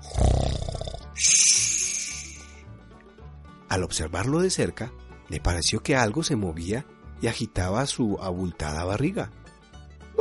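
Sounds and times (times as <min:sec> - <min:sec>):
wolf snoring while sleeping under a tree in a meadow: 0:00.0 - 0:02.4
speech: 0:03.7 - 0:09.4.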